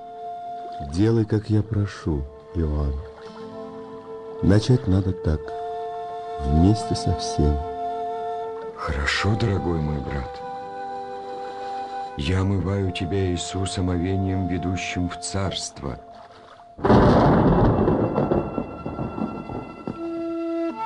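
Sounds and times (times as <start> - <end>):
speech: 0.8 - 3.1, 4.4 - 5.6, 6.4 - 7.7, 8.8 - 10.5, 12.2 - 16.2
thunder crack rumbling: 16.8 - 20.7.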